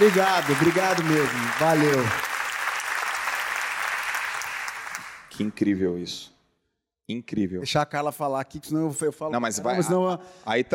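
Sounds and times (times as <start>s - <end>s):
speech: 0.0s - 2.3s, 5.4s - 6.4s, 7.1s - 10.7s
audience applause: 0.0s - 5.3s.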